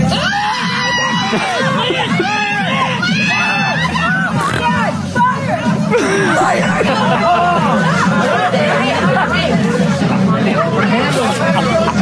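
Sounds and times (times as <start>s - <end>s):
large crowd shouting and screaming: 0.1s - 4.6s, 5.9s - 8.1s
laughter: 1.2s - 4.7s, 5.9s - 12.0s.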